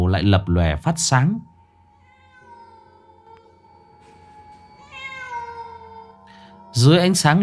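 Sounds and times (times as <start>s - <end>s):
speech: 0.1s - 1.5s, 6.8s - 7.4s
black cat meowing: 2.0s - 3.8s, 4.8s - 6.3s.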